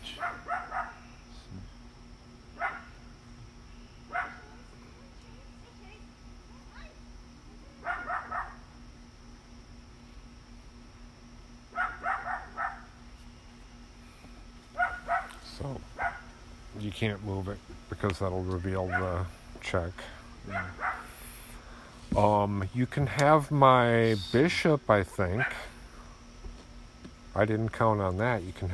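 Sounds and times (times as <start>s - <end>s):
low electrical hum: 0.0s - 28.7s
small puppy barking: 0.1s - 1.0s, 2.6s - 2.9s, 4.1s - 4.5s, 7.8s - 8.6s, 11.7s - 12.9s, 14.8s - 15.4s, 16.0s - 16.3s, 18.9s - 19.1s, 20.5s - 21.2s, 25.4s - 25.7s
speech: 16.8s - 20.8s, 22.2s - 25.7s, 27.4s - 28.7s.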